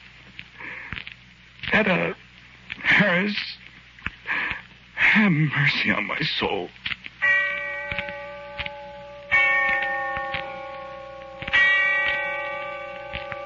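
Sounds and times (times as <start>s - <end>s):
speech: 1.8s - 2.3s, 3.0s - 3.6s, 5.2s - 6.8s
distant bell tolling: 7.2s - 13.4s.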